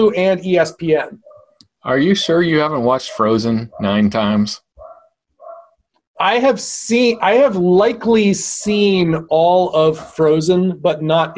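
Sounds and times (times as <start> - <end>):
speech: 0.0 - 4.6, 6.2 - 11.3
dog barking: 1.2 - 1.6, 2.2 - 4.2, 4.8 - 5.8.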